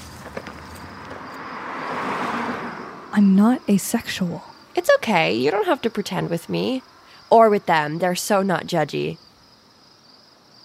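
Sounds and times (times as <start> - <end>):
car passing by: 0.0 - 3.3
speech: 3.2 - 9.2.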